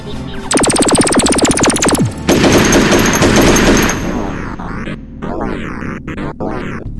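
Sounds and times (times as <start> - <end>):
sharp cracks: 0.5 - 4.6
blaster fire at security robots: 0.5 - 6.8
sweeping zaps: 0.5 - 6.8.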